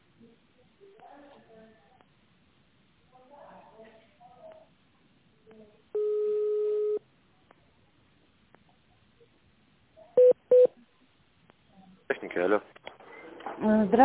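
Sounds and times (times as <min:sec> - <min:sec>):
steady telephone tone: 0:06.0 - 0:07.0
speech: 0:13.6 - 0:14.0.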